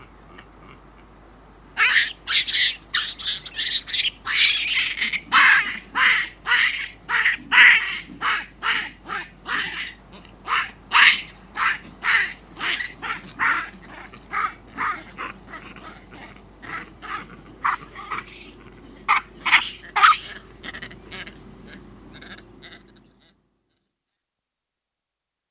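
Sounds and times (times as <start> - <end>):
juvenile chacma baboons screaming: 1.8 - 23.4.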